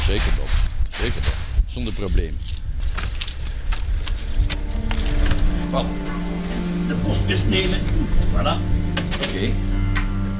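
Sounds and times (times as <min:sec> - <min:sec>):
bunch of keys jangling and clinking: 0:00.0 - 0:07.3
speech: 0:00.1 - 0:02.7, 0:05.7 - 0:09.8.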